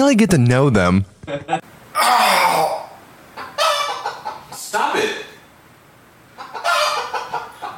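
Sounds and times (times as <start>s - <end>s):
speech: 0.0s - 2.7s
chicken clucking: 3.4s - 4.6s, 6.4s - 7.7s.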